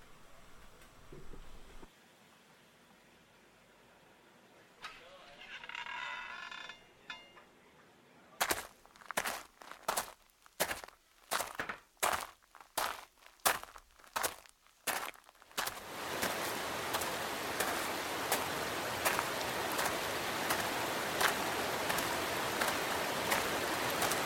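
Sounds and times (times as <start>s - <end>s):
crunching footsteps: 8.4s - 24.2s
water spilling and splashing over an overflowing water feature: 14.9s - 24.2s.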